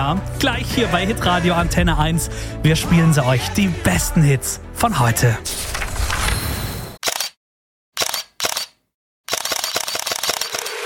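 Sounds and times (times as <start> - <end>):
speech: 0.0 - 5.8
Xiaomi 17T Pro smartphone with Leica camera shutter clicks: 7.0 - 7.4, 8.0 - 10.8.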